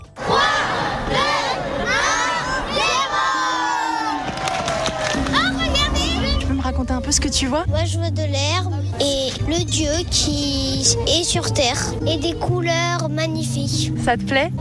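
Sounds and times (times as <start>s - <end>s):
outdoor festival crowd buzzing at Place des Terreaux in Lyon: 0.0s - 7.1s
excited children shouting and cheering at an outdoor festival show: 0.1s - 7.2s
speech: 7.1s - 14.5s.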